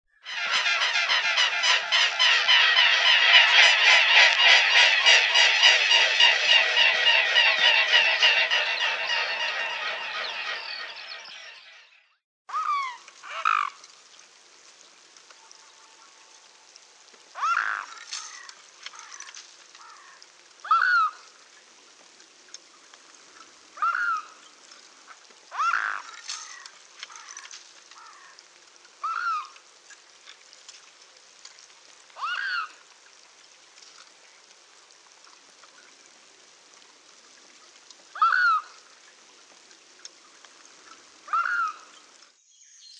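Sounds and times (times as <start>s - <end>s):
mute swan hissing: 0.2s - 11.3s
mute swan voice: 0.2s - 11.9s, 17.4s - 21.2s, 23.8s - 24.3s, 25.5s - 28.4s, 29.0s - 29.6s, 32.2s - 32.8s, 38.1s - 38.8s, 41.2s - 42.0s.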